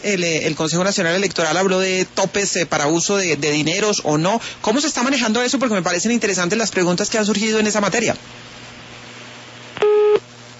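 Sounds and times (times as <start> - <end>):
speech: 0.0 - 8.5
telephone beep after a dropped phone call: 9.8 - 10.2.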